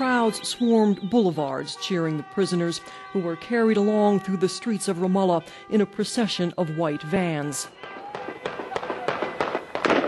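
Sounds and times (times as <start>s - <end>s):
speech: 0.0s - 7.8s
guns fired in celebration of a prisoner release in the streets of Ramallah: 7.8s - 10.0s.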